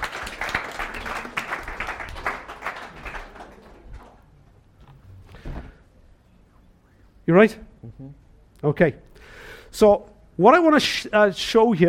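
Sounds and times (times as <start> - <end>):
audience applause: 0.0 - 4.4
speech: 7.3 - 7.7, 8.6 - 9.1, 9.7 - 11.8.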